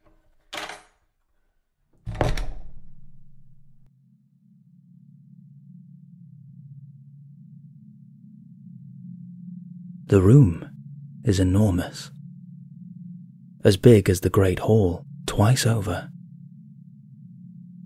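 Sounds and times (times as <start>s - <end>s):
large heavy wooden door swinging open: 2.0s - 3.8s
steady deep hum of a big room: 2.1s - 17.8s
speech: 10.1s - 12.2s, 13.6s - 16.2s.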